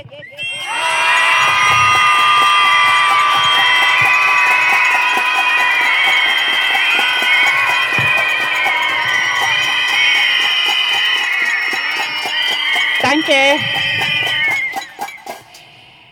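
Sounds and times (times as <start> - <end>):
protest crowd screaming against violence against women: 0.4 - 16.0.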